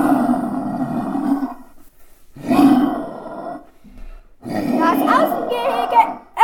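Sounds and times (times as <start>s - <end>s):
lion roaring: 0.0s - 1.7s, 2.4s - 3.7s, 4.4s - 6.3s.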